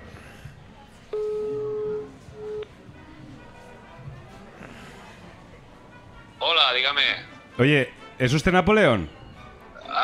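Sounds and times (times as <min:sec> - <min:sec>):
low noisy background: 0:00.0 - 0:10.0
telephone busy signal on a call that does not get through: 0:01.1 - 0:02.7
speech: 0:06.7 - 0:09.2.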